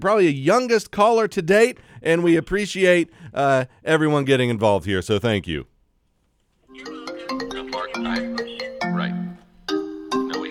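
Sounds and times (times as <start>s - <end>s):
speech: 0.0s - 5.7s
bright melodic electronic phone ringtone: 6.7s - 10.4s.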